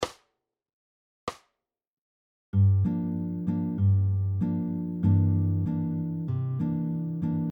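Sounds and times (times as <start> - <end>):
bossa nova rhythm on jazz guitar: 2.6 - 7.5.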